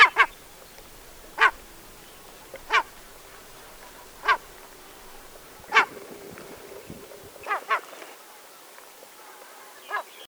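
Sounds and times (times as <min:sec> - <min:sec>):
Willow tit giving harsh nasal buzzy call notes: 0:00.0 - 0:07.6.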